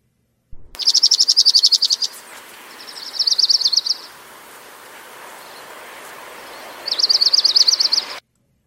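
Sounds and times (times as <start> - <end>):
faint hiss: 0.0 - 8.6
dark-eyed junco singing musical trills: 0.8 - 8.2.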